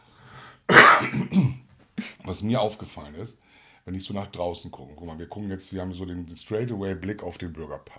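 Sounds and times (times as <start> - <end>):
person clearing throat: 0.7 - 2.2
speech: 1.0 - 1.6, 2.3 - 7.9.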